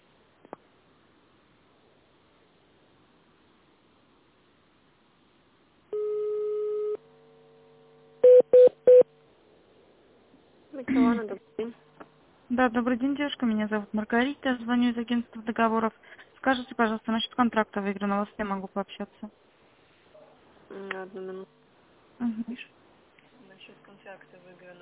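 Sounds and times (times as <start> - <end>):
steady telephone tone: 5.9 - 7.6, 8.2 - 9.1
speech: 10.8 - 11.9, 12.5 - 19.4, 20.7 - 21.6, 22.2 - 22.8, 23.7 - 24.8.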